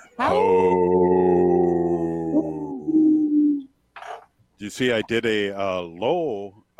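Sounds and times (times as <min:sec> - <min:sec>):
speech: 0:00.2 - 0:00.8, 0:04.6 - 0:06.7
person imitating a deep older wolf howl: 0:00.2 - 0:03.7.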